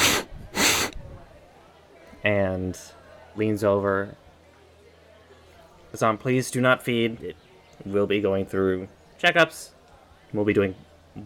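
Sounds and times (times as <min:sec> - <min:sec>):
voice imitating a creature sniffing: 0:00.0 - 0:01.0
speech: 0:02.2 - 0:04.2, 0:05.9 - 0:11.2.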